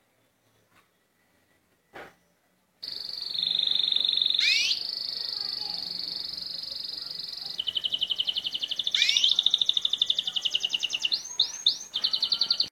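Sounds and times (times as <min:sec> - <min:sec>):
Llarguet breed canary song of long rolling trills: 0:02.8 - 0:05.6, 0:06.2 - 0:12.6.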